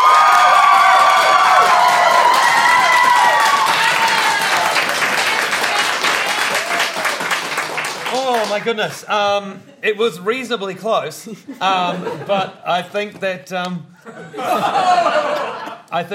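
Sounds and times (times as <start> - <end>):
audience cheering with high-pitched shouts and whoops: 0.0 - 7.2
live audience applauding to vote for a family game night game: 0.0 - 8.8
speech: 8.6 - 16.1
laughter: 11.3 - 12.6, 14.0 - 16.0.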